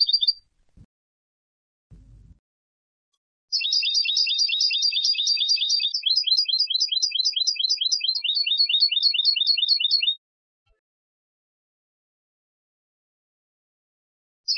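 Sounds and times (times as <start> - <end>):
European goldfinch Carduelis carduelis rapid bright chirps: 0.0 - 0.4, 3.5 - 10.2.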